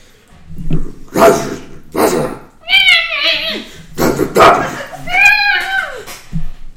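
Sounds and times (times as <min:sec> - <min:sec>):
human voice imitating bear-like creature's short rough barking growls: 0:01.1 - 0:02.6, 0:03.3 - 0:05.2.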